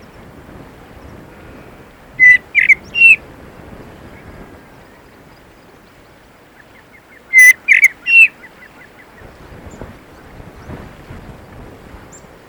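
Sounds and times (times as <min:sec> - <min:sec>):
faint low wind rumble: 0:00.0 - 0:12.4
common blackbird calling, Turdus merula: 0:01.4 - 0:03.2, 0:04.1 - 0:10.3.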